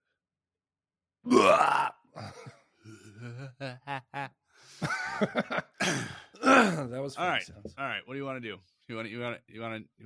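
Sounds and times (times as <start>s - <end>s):
speech: 1.2s - 2.5s, 3.2s - 6.1s, 6.8s - 10.0s
loud burp: 1.3s - 3.5s, 5.8s - 6.9s
laughter: 3.2s - 6.0s.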